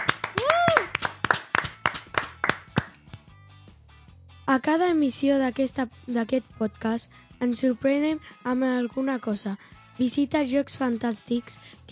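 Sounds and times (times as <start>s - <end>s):
applause from a small group: 0.0s - 3.0s
rising whoop of a cheer: 0.1s - 1.2s
speech: 4.5s - 11.9s.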